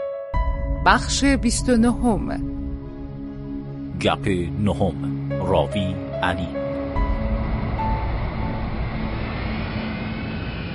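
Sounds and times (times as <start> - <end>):
speech: 0.8 - 2.6, 4.0 - 6.6
jet airplane engine roaring as a plane lands at Damascus airport: 6.7 - 10.7.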